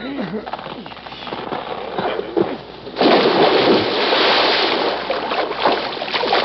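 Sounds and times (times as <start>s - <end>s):
truck shoved by two men plunging into water: 2.4s - 6.4s.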